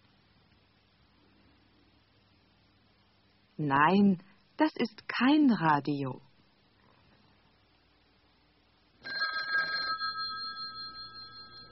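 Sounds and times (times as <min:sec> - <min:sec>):
speech: 0:03.6 - 0:06.3
telephone ringing with a buzzing bell rattle: 0:09.0 - 0:11.6.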